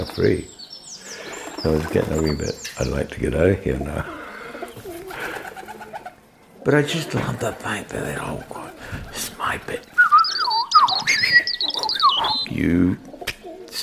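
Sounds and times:
robin chirping and warbling: 0:00.0 - 0:06.0, 0:09.1 - 0:12.6
pigeons cooing: 0:00.0 - 0:13.8
speech: 0:00.2 - 0:00.6, 0:01.6 - 0:04.2, 0:06.6 - 0:10.0, 0:12.5 - 0:13.1.

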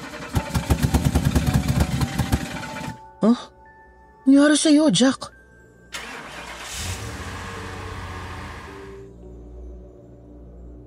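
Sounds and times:
car engine cranking and failing to start by a church in Marikina: 0:00.0 - 0:03.0, 0:05.9 - 0:09.0
speech: 0:03.2 - 0:03.6, 0:04.2 - 0:05.4.

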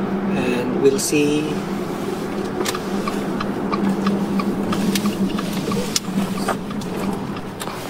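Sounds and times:
car engine rumble and hum pulling in to a stop in a mansion yard: 0:00.0 - 0:07.8
speech: 0:00.8 - 0:01.8
light clicks and ticks: 0:02.4 - 0:07.8.

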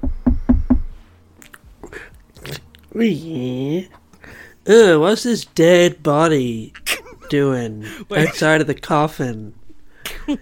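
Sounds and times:
knocking on a door: 0:00.0 - 0:00.9
quiet bumps: 0:00.0 - 0:01.0
speech: 0:03.0 - 0:04.0, 0:04.7 - 0:09.6.

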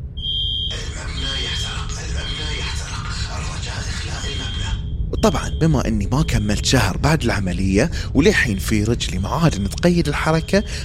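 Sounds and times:
fire alarm bell ringing in a high-rise building: 0:00.2 - 0:00.8
commotion and indistinct voices: 0:00.7 - 0:10.8
speech: 0:05.2 - 0:10.8.

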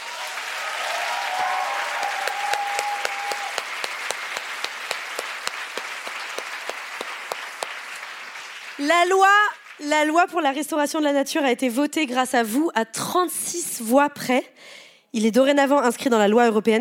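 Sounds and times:
audience applauding the adoption of a law: 0:00.0 - 0:10.1
speech: 0:08.8 - 0:16.7.

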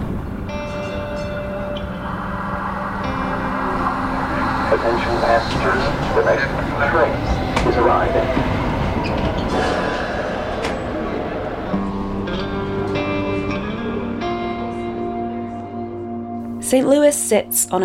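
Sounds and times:
light rail train rumble in motion in St. Louis: 0:00.0 - 0:12.5
sustained tonal hums and squeals of light rail train on the track: 0:00.0 - 0:16.4
speech: 0:04.7 - 0:09.8, 0:16.7 - 0:17.8.

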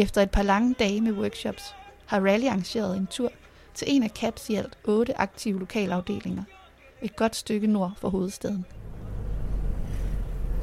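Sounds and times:
speech: 0:00.0 - 0:08.8
car engine and road noise inside a moving car: 0:08.7 - 0:10.6.

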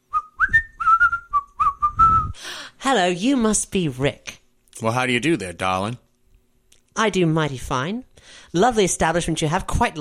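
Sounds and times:
person whistling a short bright melody: 0:00.1 - 0:02.4
speech: 0:02.8 - 0:06.0, 0:07.0 - 0:10.0.

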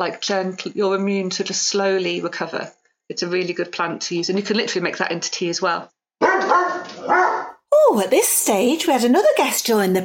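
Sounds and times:
speech: 0:00.0 - 0:10.0
dog barking: 0:06.2 - 0:07.6.

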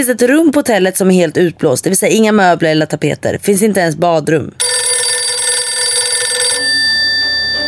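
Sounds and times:
speech: 0:00.0 - 0:04.7
telephone bell ringing: 0:04.6 - 0:07.6.

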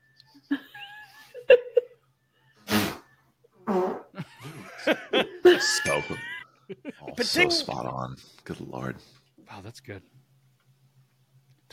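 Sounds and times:
laughter: 0:00.5 - 0:02.0, 0:04.2 - 0:07.9
short fart sounds: 0:02.6 - 0:04.2
speech: 0:04.9 - 0:10.2.

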